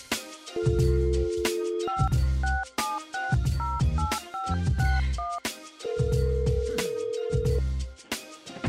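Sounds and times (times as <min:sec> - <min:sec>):
loud rhythmic music with a heavy beat: 0:00.0 - 0:08.6
telephone ringing tone: 0:00.6 - 0:07.6
telephone keypad beeps dialing a call: 0:01.4 - 0:05.4.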